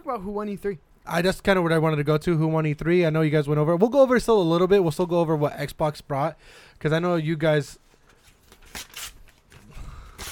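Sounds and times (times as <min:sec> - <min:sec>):
speech: 0:00.1 - 0:07.8
printed-out news pages being ripped up by a man: 0:08.1 - 0:10.2.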